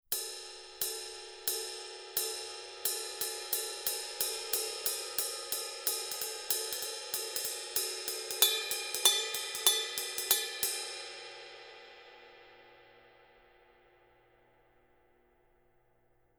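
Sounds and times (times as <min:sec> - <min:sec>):
black ride cymbal: 0:00.1 - 0:12.7.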